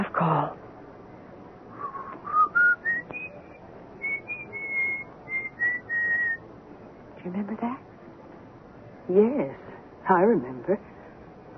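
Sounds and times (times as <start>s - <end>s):
speech: 0.2s - 0.6s, 7.2s - 7.9s, 9.1s - 10.9s
person whistling a slow wavering old tune: 1.8s - 6.4s.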